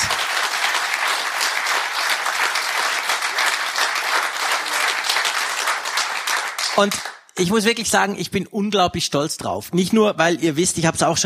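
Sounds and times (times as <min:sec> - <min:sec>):
audience applause: 0:00.0 - 0:07.2
speech: 0:06.8 - 0:11.2.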